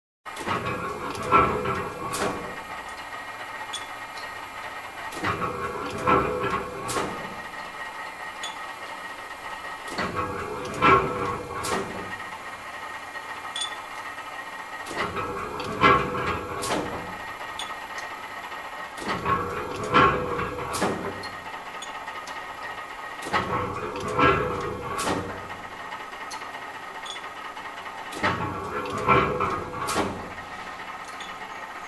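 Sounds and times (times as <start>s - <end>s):
engine bearing rolling: 0.4s - 31.8s.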